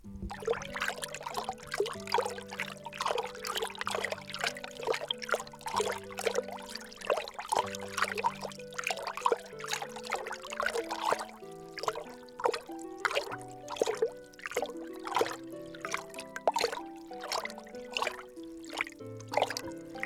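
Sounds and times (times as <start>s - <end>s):
stirring: 0.1s - 20.0s.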